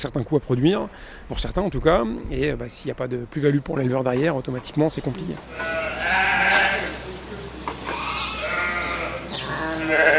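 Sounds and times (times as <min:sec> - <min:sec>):
speech: 0:00.0 - 0:06.0
flock of ewes bleating on a farm: 0:05.5 - 0:07.0, 0:07.8 - 0:10.1.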